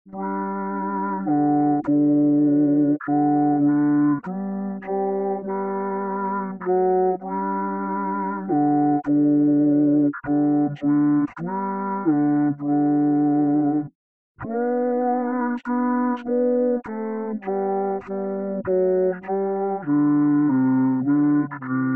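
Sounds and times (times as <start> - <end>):
SATB alto part sung an octave down: 0.1 - 21.9.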